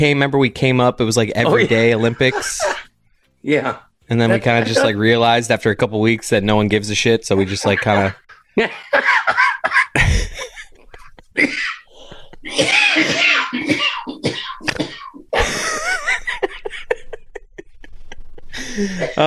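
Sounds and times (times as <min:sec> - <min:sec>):
speech: 0:00.0 - 0:09.4, 0:11.4 - 0:11.8, 0:12.5 - 0:14.8, 0:18.6 - 0:19.2
laughter: 0:01.5 - 0:02.9, 0:07.4 - 0:12.6, 0:15.4 - 0:19.2
person coughing: 0:09.4 - 0:15.9, 0:18.8 - 0:19.2.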